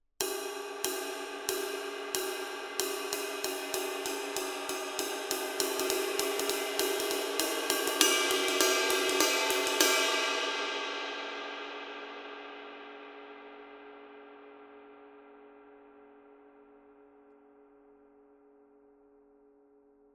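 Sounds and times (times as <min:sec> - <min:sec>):
22 dark crash ride cymbal pattern: 0:00.2 - 0:13.1.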